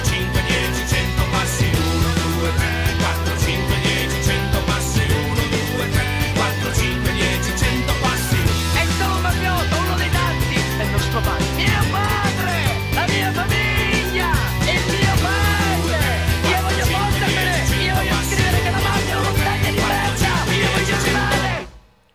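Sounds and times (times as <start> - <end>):
loud dense folk-rock song with full band and shouted vocals: 0.0 - 21.8.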